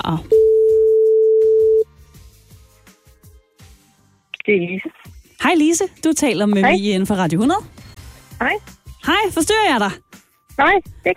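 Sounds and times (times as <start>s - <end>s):
speech: 0.1s - 0.4s, 4.5s - 7.8s, 8.4s - 10.0s, 10.6s - 11.1s
ringback tone of an outgoing telephone call: 0.3s - 1.8s.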